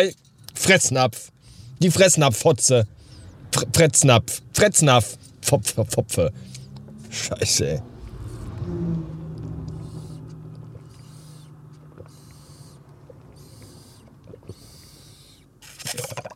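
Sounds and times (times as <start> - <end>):
speech: 0.0 - 7.9, 8.7 - 9.2
quiet outdoor ambience: 0.0 - 16.3
fast car roaring past on a country road: 6.3 - 12.1.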